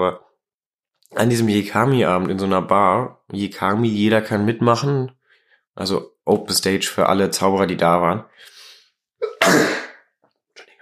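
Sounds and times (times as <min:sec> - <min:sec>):
speech: 0:00.0 - 0:00.2, 0:01.1 - 0:05.2, 0:05.8 - 0:08.5
breathy sneeze: 0:09.2 - 0:10.1.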